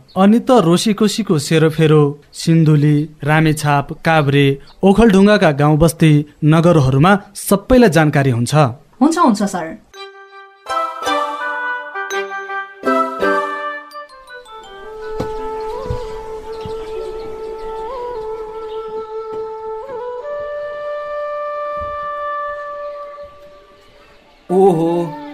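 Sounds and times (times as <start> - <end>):
speech: 0.1 - 9.9, 24.6 - 25.2
bamboo flute playing a slow melody: 10.0 - 25.3.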